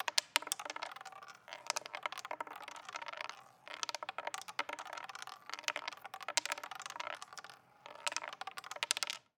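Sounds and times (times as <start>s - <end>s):
roulette wheel: 0.0s - 9.3s.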